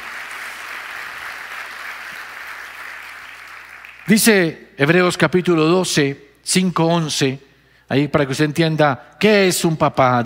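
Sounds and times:
large crowd applauding: 0:00.0 - 0:04.2
speech: 0:04.1 - 0:10.2.

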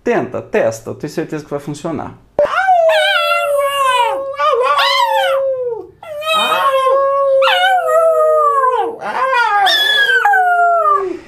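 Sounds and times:
speech: 0:00.1 - 0:02.2
dog howling: 0:02.4 - 0:11.2.

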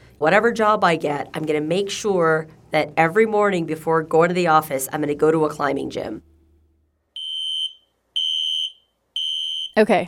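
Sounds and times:
speech: 0:00.2 - 0:06.3, 0:09.8 - 0:10.0
loud shrill fire alarm beeping in a burrito shop: 0:07.1 - 0:09.8.

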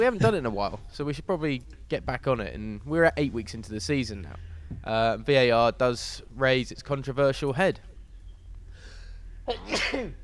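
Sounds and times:
speech: 0:00.0 - 0:07.9, 0:09.5 - 0:10.2
sneeze: 0:09.5 - 0:10.2.

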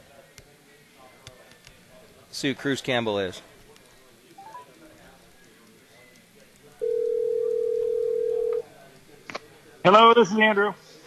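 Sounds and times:
faint noise: 0:00.0 - 0:11.0
speech: 0:02.4 - 0:03.5, 0:09.8 - 0:11.0
outgoing phone call ring tone: 0:06.8 - 0:08.6.

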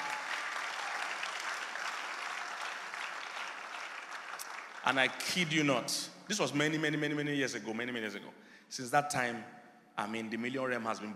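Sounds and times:
audience clapping: 0:00.0 - 0:05.6
speech: 0:04.8 - 0:11.1.

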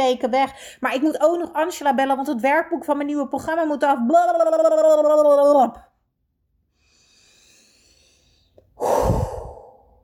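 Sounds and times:
speech: 0:00.0 - 0:05.9
deep calm breath: 0:06.7 - 0:10.0.

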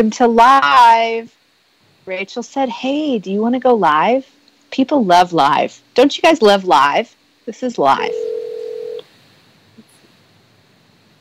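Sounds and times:
speech: 0:00.0 - 0:01.4, 0:02.1 - 0:08.4
outgoing phone call electronic ringing tone: 0:08.0 - 0:09.0.

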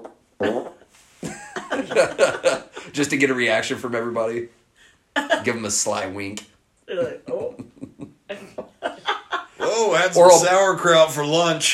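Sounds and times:
person imitating a fart with the mouth in an elevator: 0:00.4 - 0:00.9
laughter: 0:01.2 - 0:02.9, 0:07.0 - 0:10.5
speech: 0:01.9 - 0:04.6, 0:05.2 - 0:07.0, 0:10.0 - 0:11.7.

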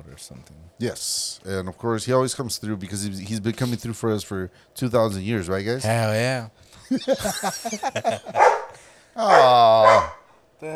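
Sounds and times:
speech: 0:00.2 - 0:10.7
laughter: 0:06.8 - 0:10.1
dog barking and yipping: 0:08.2 - 0:10.3.

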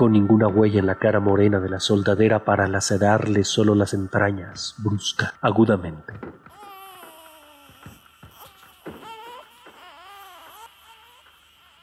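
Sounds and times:
speech: 0:00.0 - 0:06.4
baby crying in high-pitched wails: 0:06.1 - 0:11.8.

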